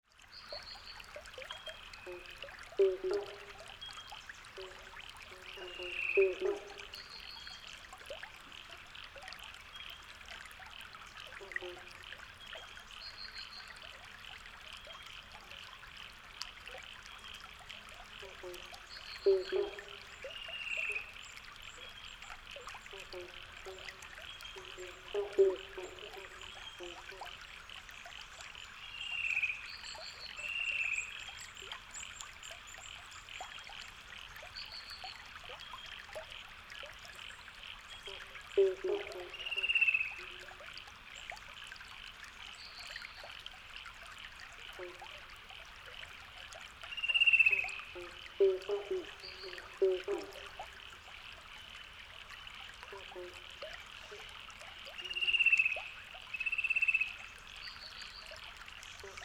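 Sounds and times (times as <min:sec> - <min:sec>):
frogs: 0:00.2 - 0:59.2
cuckoos: 0:02.0 - 0:03.8, 0:04.5 - 0:07.1, 0:18.2 - 0:21.1, 0:22.9 - 0:27.4, 0:38.0 - 0:40.6, 0:47.0 - 0:50.7, 0:52.8 - 0:54.3.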